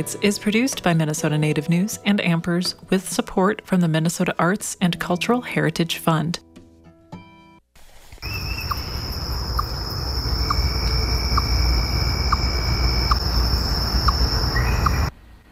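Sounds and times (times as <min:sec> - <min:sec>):
speech: 0:00.0 - 0:06.5
chipmunk chirping outdoors: 0:08.2 - 0:15.1
constant high insect drone outdoors: 0:08.2 - 0:15.1.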